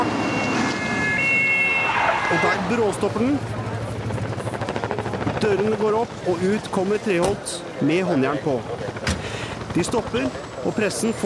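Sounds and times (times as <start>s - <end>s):
sirens wailing outside a courthouse: 0.0s - 3.5s
traffic rumble: 0.0s - 11.2s
speech: 2.3s - 4.2s, 5.4s - 9.0s, 9.8s - 11.2s.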